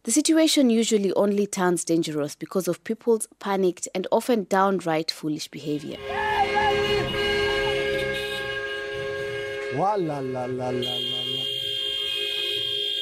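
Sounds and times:
speech: 0:00.0 - 0:06.3, 0:09.7 - 0:11.1
car horns honking on a busy road: 0:05.7 - 0:13.0
traffic roar on a busy road: 0:05.7 - 0:13.0.

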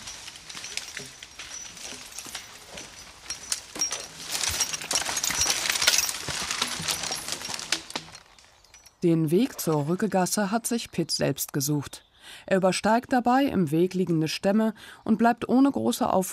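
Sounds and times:
draft horse hooves thudding and crunching over forest ground: 0:00.0 - 0:08.8
metal harness chains clinking and rattling: 0:00.0 - 0:09.7
speech: 0:09.0 - 0:16.3.

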